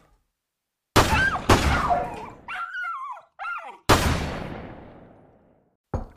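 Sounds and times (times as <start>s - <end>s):
dogs barking: 1.2s - 3.9s.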